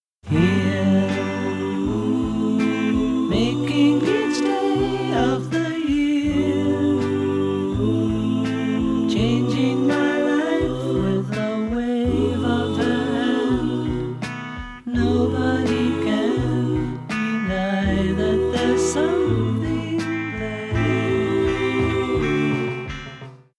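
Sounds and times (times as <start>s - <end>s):
backing vocals: 0.3s - 23.0s.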